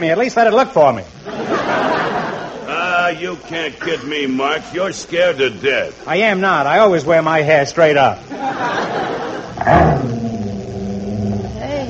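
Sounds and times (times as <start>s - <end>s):
speech: 0.0s - 1.2s, 3.1s - 10.1s
laughter: 1.2s - 4.9s, 8.3s - 9.7s
dog growling: 9.6s - 11.8s.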